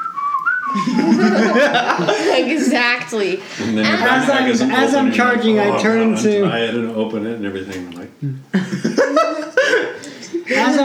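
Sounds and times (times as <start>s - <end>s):
person whistling a wavering tune: 0.0s - 1.7s
laughter: 0.6s - 5.2s, 8.2s - 10.8s
speech: 0.8s - 9.0s
loud voices and chatter: 1.1s - 8.5s, 9.2s - 10.8s.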